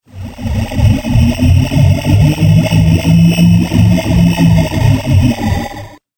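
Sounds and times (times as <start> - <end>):
spaceship engine failing to start: 0.0 - 6.0.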